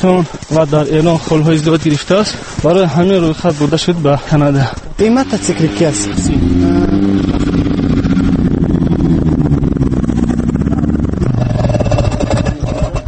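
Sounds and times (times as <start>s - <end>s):
speech: 0.0s - 6.9s
snowmobile engine revving with a rough rattling motor: 4.3s - 13.0s.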